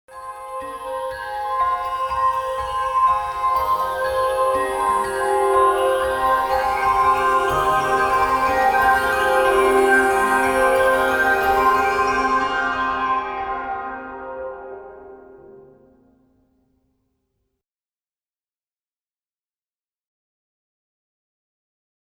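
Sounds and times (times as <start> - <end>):
Phantom Pad on Roland XP-80 synthesizer: 0.2 - 16.1.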